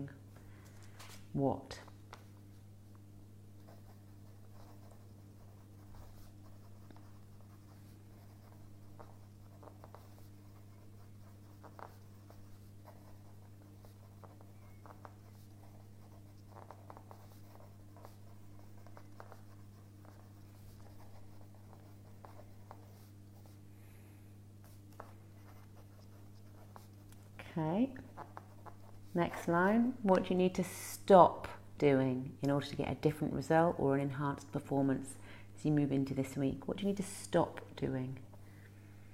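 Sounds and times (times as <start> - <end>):
speech: 1.3 - 1.9, 27.6 - 28.4, 29.2 - 38.2
pen scratching across paper: 3.6 - 23.6, 24.6 - 29.6.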